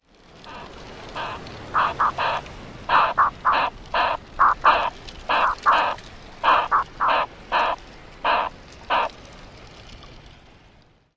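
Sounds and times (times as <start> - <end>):
guttural calls: 0.4 - 9.1.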